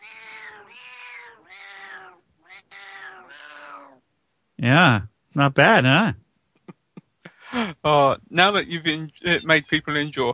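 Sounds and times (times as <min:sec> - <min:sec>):
cat meowing in wheezy strained cries: 0:00.0 - 0:04.0, 0:09.2 - 0:10.1
speech: 0:04.6 - 0:06.2, 0:07.8 - 0:10.3.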